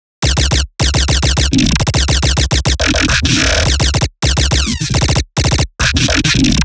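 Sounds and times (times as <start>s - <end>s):
riddim bass loop: 0.2s - 6.6s.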